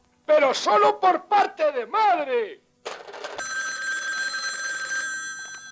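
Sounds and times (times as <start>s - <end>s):
speech: 0.3s - 2.7s
telephone bell ringing: 3.3s - 5.6s.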